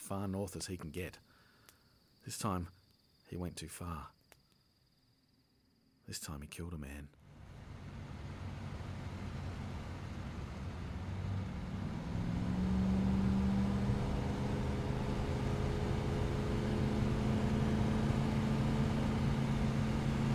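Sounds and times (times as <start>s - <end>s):
speech: 0.1s - 1.4s, 2.2s - 4.2s, 6.1s - 7.2s
car engine humming while driving along a road and over a hill: 7.2s - 20.3s
road noise: 7.2s - 20.3s.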